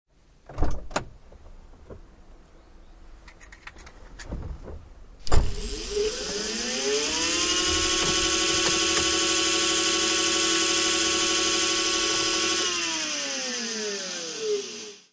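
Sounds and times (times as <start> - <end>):
electric vehicle entry motor revving: 5.4 - 15.1.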